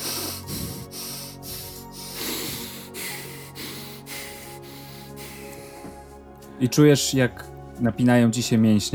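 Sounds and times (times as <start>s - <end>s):
person hyperventilating: 0.0s - 6.3s
speech: 6.6s - 8.9s.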